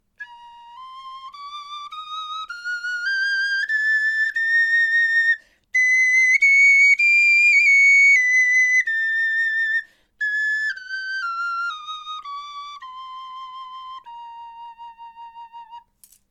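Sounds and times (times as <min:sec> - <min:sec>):
bone flute playing a scale: 0:00.2 - 0:15.9.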